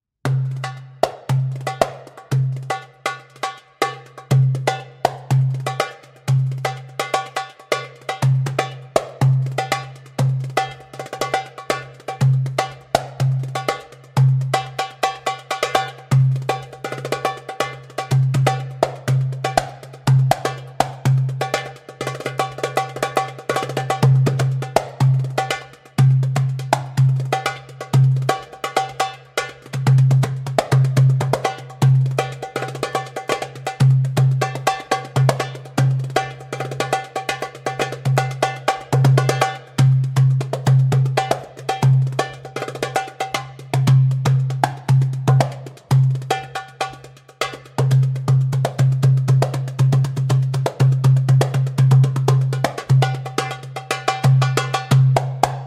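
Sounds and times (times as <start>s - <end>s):
darbuka: 0.2s - 55.6s.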